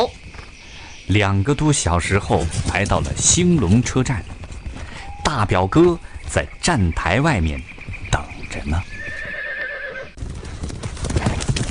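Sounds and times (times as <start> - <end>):
speech: 0.0 - 0.2, 1.1 - 4.4, 5.3 - 7.7, 8.5 - 9.0
large troop of mounted soldiers' horses galloping, hooves clip-clopping: 0.0 - 11.6
horse whinnying: 8.9 - 10.2.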